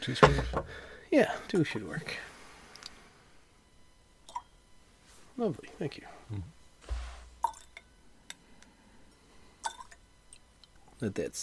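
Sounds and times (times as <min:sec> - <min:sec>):
speech: 0:00.0 - 0:02.3, 0:05.4 - 0:06.6, 0:11.0 - 0:11.4
water dripping into a glass of whiskey: 0:04.3 - 0:04.5, 0:07.4 - 0:07.9, 0:09.6 - 0:10.4.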